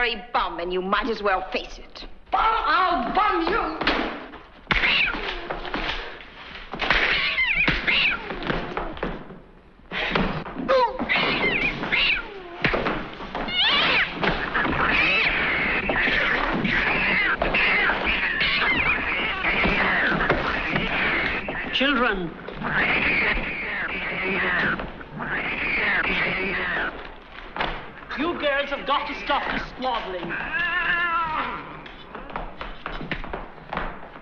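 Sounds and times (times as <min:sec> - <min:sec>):
speech: 0:00.0 - 0:04.0, 0:28.6 - 0:31.0
thumps and bumps of cats fighting: 0:03.1 - 0:30.6
cats fighting with yowling and screeching meows: 0:04.7 - 0:06.0, 0:06.8 - 0:09.1, 0:10.7 - 0:27.2, 0:29.2 - 0:32.8.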